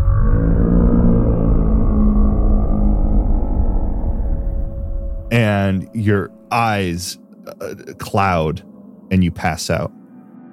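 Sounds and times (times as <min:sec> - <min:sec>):
deep monstrous roar with low rumbling tones: 0:00.0 - 0:04.8
speech: 0:05.3 - 0:10.0.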